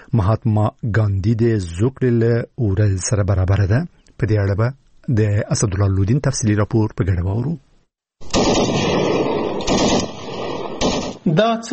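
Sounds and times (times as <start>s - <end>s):
speech: 0.1s - 7.7s, 11.3s - 11.7s
heavy gunfire exchanged between Afghan and Pakistani border soldiers along the Durand Line: 8.2s - 11.2s.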